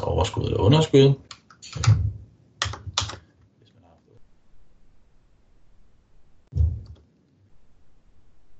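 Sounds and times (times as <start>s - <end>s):
speech: 0.2s - 2.0s
computer keyboard clacks: 1.3s - 3.2s.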